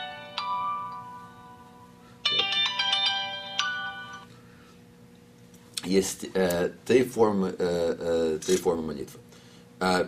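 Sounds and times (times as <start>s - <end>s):
mobile phone ringtone playing an electronic tune: 0.0s - 4.3s
speech: 5.9s - 10.0s.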